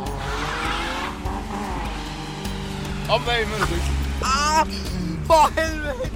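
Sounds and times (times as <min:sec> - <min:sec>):
Golf 2 diesel car driving past: 0:00.0 - 0:06.1
speech: 0:03.1 - 0:06.1.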